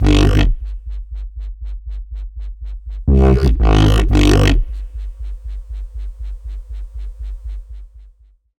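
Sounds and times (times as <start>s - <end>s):
bass synth with Neuro Warp preset: 0.0s - 1.0s, 2.9s - 5.4s.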